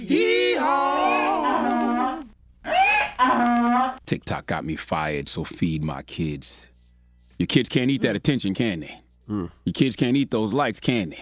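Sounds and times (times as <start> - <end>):
loud donkey braying: 0.3 - 4.0
speech: 4.1 - 6.7, 7.4 - 11.2.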